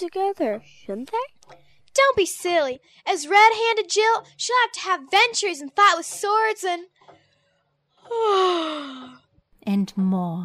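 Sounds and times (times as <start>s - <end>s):
speech: 0.0s - 7.2s, 8.1s - 10.4s
child yawning: 8.1s - 9.2s.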